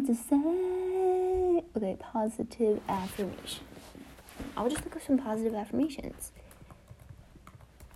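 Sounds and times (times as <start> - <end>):
speech: 0.1 - 0.7, 1.8 - 3.7, 4.6 - 6.4
typing on a computer keyboard: 6.4 - 7.9.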